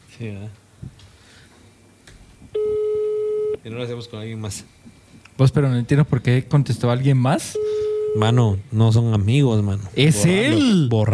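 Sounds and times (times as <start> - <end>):
speech: 0.2 - 1.0, 3.6 - 11.1
telephone ringing tone on an outgoing call: 2.6 - 3.6, 7.6 - 8.3.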